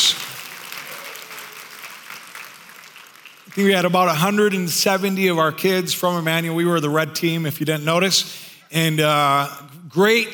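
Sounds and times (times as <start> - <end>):
large group applauding: 0.0 - 4.4
speech: 3.6 - 10.3.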